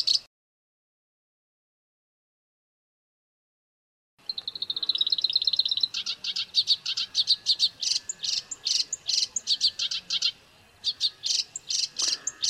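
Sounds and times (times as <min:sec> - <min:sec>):
black-browed reed warbler singing: 0:00.0 - 0:00.3, 0:04.2 - 0:12.4.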